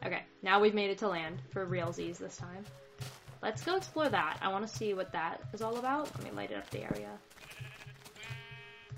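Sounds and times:
speech: 0.4s - 7.7s
soft repeated low thumps: 1.2s - 8.9s
sheep bleating: 7.4s - 8.9s.

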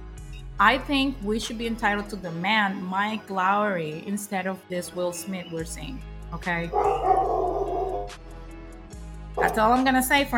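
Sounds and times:
speech: 0.6s - 7.3s, 9.5s - 10.3s
dogs barking: 6.7s - 8.2s, 9.4s - 9.8s
drawn-out howl-like cry: 6.8s - 8.1s.

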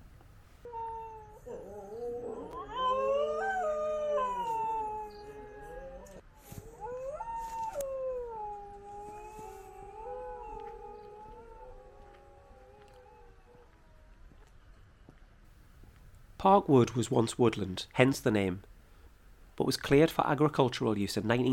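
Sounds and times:
dog howling: 0.7s - 14.2s
speech: 16.4s - 18.7s, 19.7s - 21.5s.

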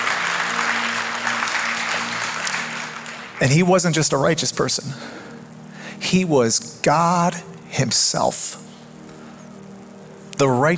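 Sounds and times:
audience applause at a church sermon: 0.0s - 3.7s
speech: 3.4s - 5.2s, 6.0s - 8.6s, 10.4s - 10.7s.

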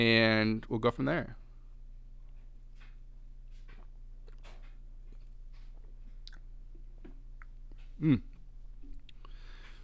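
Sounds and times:
speech: 0.0s - 1.4s, 8.0s - 8.3s
person gulping beer: 7.8s - 9.3s.

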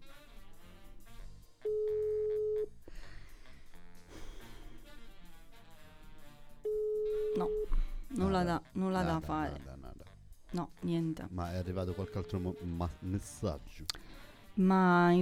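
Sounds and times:
phone ringback tone on an outgoing call: 1.6s - 2.7s, 6.6s - 7.8s
speech: 7.4s - 7.6s, 8.2s - 9.7s, 10.5s - 15.2s.

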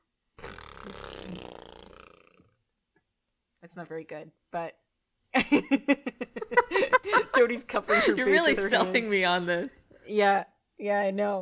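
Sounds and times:
voice imitating a fart: 0.4s - 2.7s
speech: 0.8s - 1.4s, 3.6s - 11.4s
laughter: 5.4s - 9.5s.

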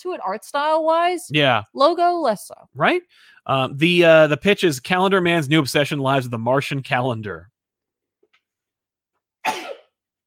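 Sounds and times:
speech: 0.0s - 7.5s, 9.5s - 9.8s
sneeze: 9.4s - 10.0s.

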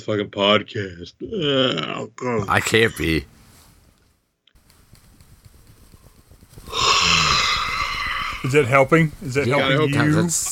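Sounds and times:
speech: 0.0s - 3.4s, 8.4s - 10.5s
loud exaggerated yawn with low voiced groan: 6.7s - 8.4s.

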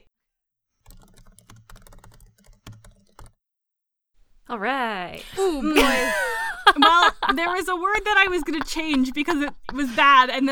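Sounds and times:
typing on a computer keyboard: 0.8s - 3.4s
speech: 4.5s - 10.5s
laughter: 5.1s - 10.5s.

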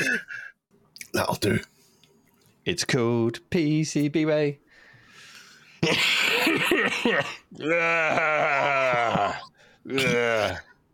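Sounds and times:
speech: 1.2s - 1.7s, 2.6s - 4.6s, 5.8s - 10.7s
rough raspy coughing: 5.8s - 7.6s, 9.9s - 10.6s
long strained vocal groan: 7.5s - 10.8s.

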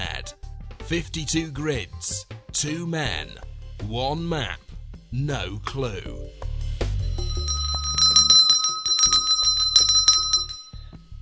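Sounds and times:
speech: 0.9s - 6.4s
small bell being rung in studio: 7.0s - 11.0s.

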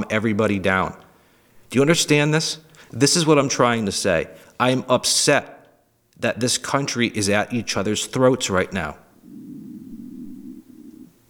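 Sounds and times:
speech: 0.1s - 1.0s, 1.7s - 5.6s, 6.2s - 9.4s
stomach rumbling from hunger: 9.2s - 11.2s.

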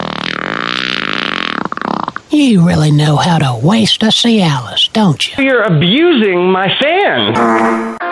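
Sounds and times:
long loud buzzy fart: 0.0s - 2.3s, 7.4s - 8.0s
speech: 2.3s - 8.0s.

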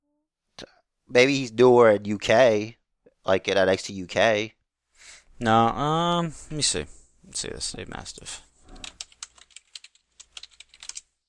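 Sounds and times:
speech: 1.1s - 8.5s
typing on a loud computer keyboard: 8.7s - 11.1s.

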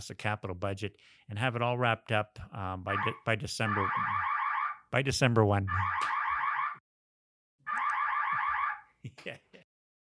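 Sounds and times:
speech: 0.0s - 4.3s, 4.9s - 6.2s, 9.1s - 9.6s
electronic fire alarm blasts from a building fire system being tested: 2.9s - 4.8s, 5.7s - 6.8s, 7.7s - 8.9s.

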